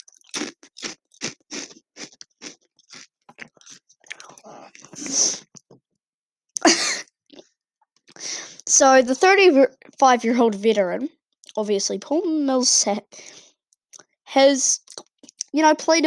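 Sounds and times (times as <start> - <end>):
potato chips being chewed: 0.0 - 5.6
speech: 8.8 - 13.0, 14.4 - 14.8, 15.6 - 16.0.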